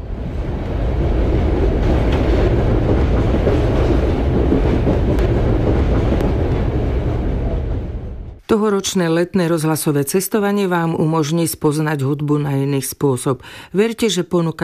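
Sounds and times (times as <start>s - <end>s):
train rolling along the rails: 0.0s - 8.4s
train wheels clickety-clack on rails: 1.6s - 7.0s
speech: 8.5s - 14.6s.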